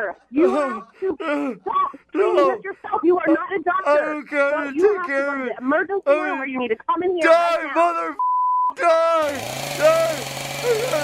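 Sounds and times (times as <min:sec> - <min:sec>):
speech: 0:00.0 - 0:11.0
short beep: 0:08.2 - 0:08.8
chainsaw revving: 0:08.8 - 0:11.0.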